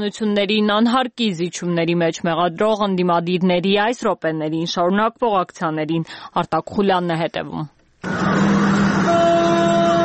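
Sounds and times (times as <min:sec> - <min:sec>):
speech: 0:00.0 - 0:08.8
car horns honking in an opposition protest motorcade: 0:08.0 - 0:10.0.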